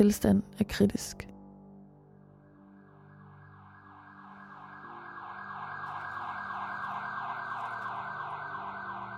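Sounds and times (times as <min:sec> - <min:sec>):
speech: 0:00.0 - 0:01.3
ambulance siren wailing: 0:03.4 - 0:09.1.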